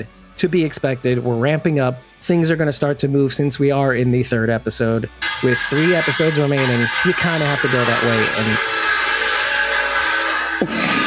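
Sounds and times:
speech: 0.0s - 9.1s, 10.6s - 11.0s
saw cutting wood outside: 5.2s - 11.0s.

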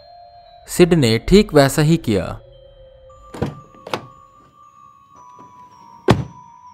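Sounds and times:
speech: 0.7s - 2.4s
door pushed shut with a solid thunk: 3.3s - 4.2s, 5.4s - 6.4s
soft handling knocks on a door: 3.4s - 4.2s, 5.3s - 6.4s.

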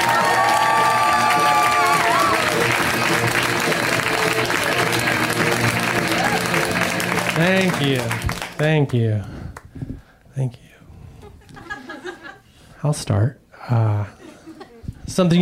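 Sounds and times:
audience whoops and cheers: 0.0s - 3.1s, 5.9s - 7.0s
room full of people clapping: 0.0s - 9.0s
speech: 7.4s - 10.6s, 12.8s - 14.2s, 15.1s - 15.4s
laughter: 11.3s - 12.4s, 13.8s - 14.9s.

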